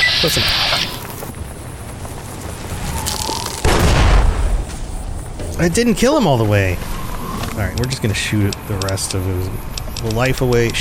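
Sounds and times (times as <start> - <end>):
speech: 0.2 - 0.9, 5.6 - 6.9, 7.6 - 10.8
dynamite explosion in a video game: 2.5 - 6.8.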